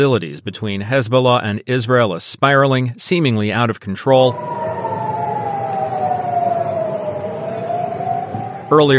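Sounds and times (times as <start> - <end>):
speech: 0.0 - 4.6, 8.7 - 8.9
air raid sirens blaring: 4.2 - 8.9.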